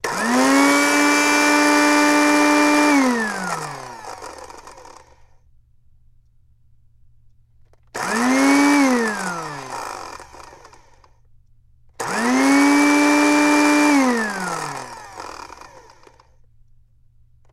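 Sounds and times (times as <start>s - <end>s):
blender starting dry: 0.0s - 5.4s, 8.0s - 11.2s, 12.0s - 16.4s.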